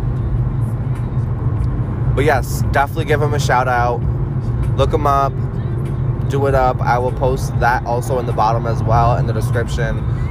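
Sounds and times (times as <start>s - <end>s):
road noise inside a moving car: 0.0s - 10.2s
speech: 2.2s - 4.2s, 4.8s - 5.6s, 6.3s - 10.2s.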